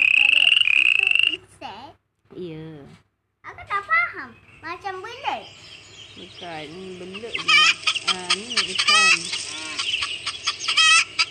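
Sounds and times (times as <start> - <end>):
chickens clucking and squawking: 0.0 - 1.4, 4.7 - 11.2
speech: 1.9 - 3.1, 6.2 - 9.7.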